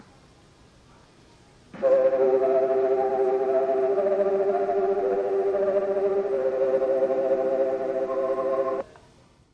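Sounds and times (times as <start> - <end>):
train station departure melody: 1.8 - 8.8.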